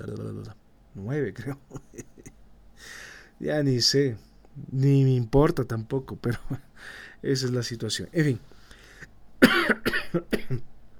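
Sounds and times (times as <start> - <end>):
speech: 0.0 - 2.1, 2.8 - 8.6, 9.4 - 10.7
laughter: 1.7 - 2.4
person coughing harshly: 9.4 - 10.7.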